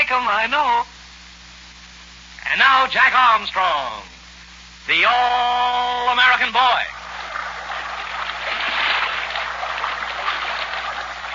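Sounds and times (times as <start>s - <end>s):
speech: 0.1s - 0.9s, 2.5s - 4.1s, 4.8s - 6.9s
paddle strokes splashing against river rapids: 6.9s - 11.3s
swift river rapids rushing: 6.9s - 11.3s.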